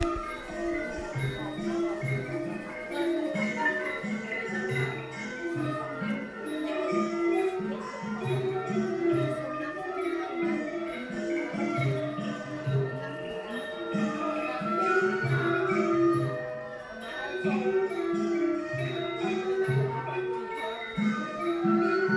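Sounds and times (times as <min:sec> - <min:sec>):
music in a temple in Luang Prabang Laos: 0:00.0 - 0:22.1.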